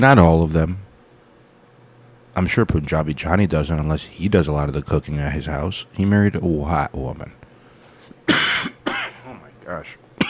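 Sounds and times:
speech: 0.0 - 0.8, 2.4 - 7.4, 8.3 - 8.8, 9.7 - 10.0
person clearing throat after vaping: 8.3 - 9.5
person coughing after vaping: 8.3 - 9.5.

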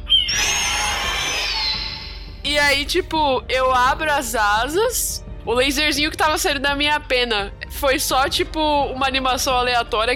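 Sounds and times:
person imitating a classic eagle screech: 0.0 - 2.3
speech: 2.6 - 10.1.

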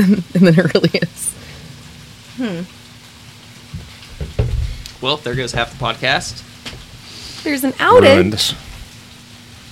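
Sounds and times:
speech: 0.0 - 1.4, 2.4 - 2.8, 5.0 - 6.5, 7.4 - 8.6
light rain pattering: 0.0 - 9.7
short voiced sound: 7.9 - 8.4.

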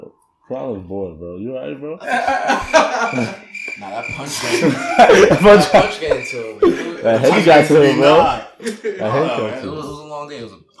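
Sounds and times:
speech: 0.5 - 10.7
person mimicking a cricket's chirp with their voice: 2.0 - 7.0
laughter and chuckling: 2.0 - 9.6.

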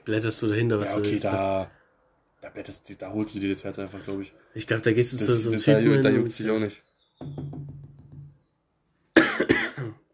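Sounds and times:
speech: 0.1 - 1.8, 2.4 - 7.6
person coughing: 9.2 - 10.0.

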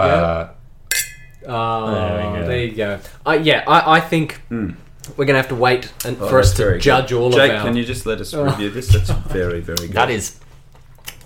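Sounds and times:
glasses of grandfather tawny port clinking in a toast: 0.9 - 1.4
speech: 1.4 - 10.4.

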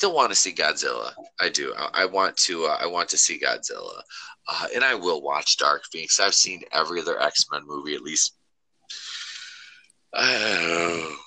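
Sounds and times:
speech: 0.0 - 9.0, 10.1 - 11.2
person yawning: 8.9 - 11.2.

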